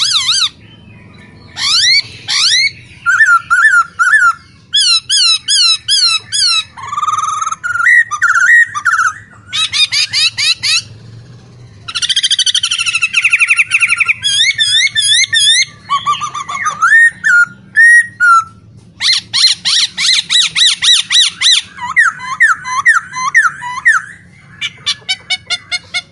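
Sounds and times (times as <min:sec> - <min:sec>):
caged masked laughingthrush in full song: 0:00.0 - 0:26.1.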